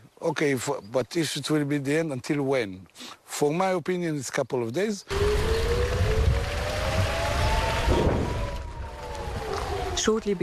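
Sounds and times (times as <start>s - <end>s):
speech: 0.2s - 5.5s, 10.0s - 10.4s
air raid siren wailing from a neighboring kibbutz: 5.1s - 10.4s
constant low rumble: 5.1s - 10.4s.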